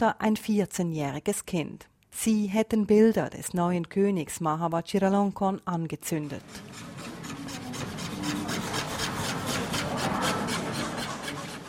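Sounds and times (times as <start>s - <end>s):
speech: 0.0s - 6.9s
workers sawing wooden coffin decorations: 6.3s - 11.6s.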